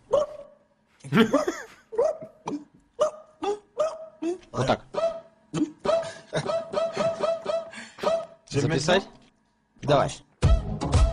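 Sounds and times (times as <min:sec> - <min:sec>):
speech: 0:01.1 - 0:01.6, 0:04.6 - 0:04.9, 0:08.6 - 0:09.2, 0:09.9 - 0:10.3
human voice mimicking a sickly hoarse dog barking: 0:01.9 - 0:08.4.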